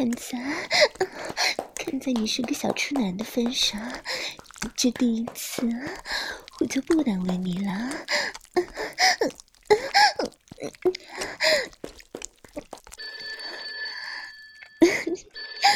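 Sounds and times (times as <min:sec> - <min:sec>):
speech: 0:00.0 - 0:09.4
sharp breathing: 0:00.3 - 0:01.7, 0:03.9 - 0:04.6, 0:05.8 - 0:06.6, 0:07.8 - 0:10.2, 0:11.0 - 0:11.8
telephone ringing with a high electronic tone: 0:13.0 - 0:15.7.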